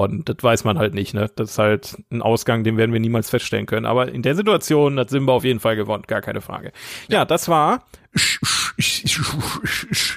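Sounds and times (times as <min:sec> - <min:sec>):
speech: 0:00.0 - 0:10.1
voice making fight-punching sound effects with the mouth: 0:08.2 - 0:10.1.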